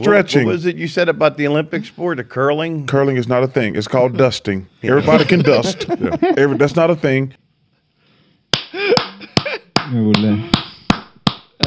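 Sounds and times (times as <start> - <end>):
speech: 0.0 - 7.4, 9.9 - 10.6
laughter: 4.9 - 6.9, 8.8 - 10.6
sharp hand claps: 8.5 - 11.6.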